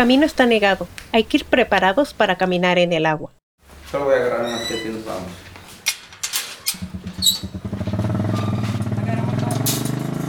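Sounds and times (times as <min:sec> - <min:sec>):
speech: 0:00.0 - 0:05.5
motorcycle engine on a stony waterlogged dirt track: 0:06.8 - 0:10.2.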